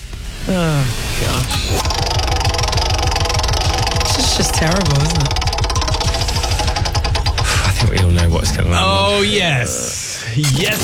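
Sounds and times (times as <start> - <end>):
low hum: 0.0 - 10.0
game wheel being spun, ticking: 1.8 - 8.8
speech: 9.1 - 10.8.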